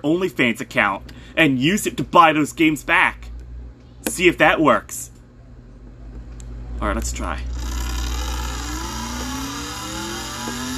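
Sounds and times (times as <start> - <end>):
speech: 0.0 - 3.2, 4.0 - 5.1, 6.8 - 7.6
racing video game car engine revving at high speed: 8.1 - 10.7.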